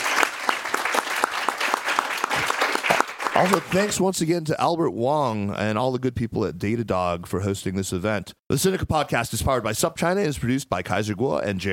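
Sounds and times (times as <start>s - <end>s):
live crowd applauding: 0.0s - 4.0s
rhythmic clapping within the ovation: 0.0s - 4.0s
speech: 3.4s - 11.7s.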